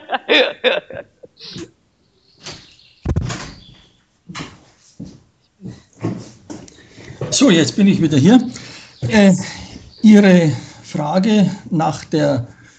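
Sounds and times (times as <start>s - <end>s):
laughter: 0.0s - 1.6s
speech: 0.3s - 1.7s, 7.4s - 12.6s
room door pulled shut: 2.4s - 4.6s.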